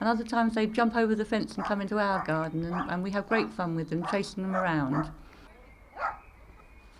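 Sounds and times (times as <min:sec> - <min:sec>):
speech: 0:00.0 - 0:05.2
dog barking: 0:01.6 - 0:05.2, 0:06.0 - 0:06.3.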